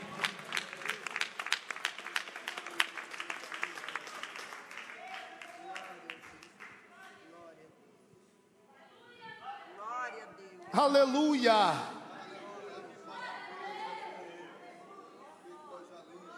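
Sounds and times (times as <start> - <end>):
audience applauding: 0.0 - 6.9
speech: 10.8 - 11.9.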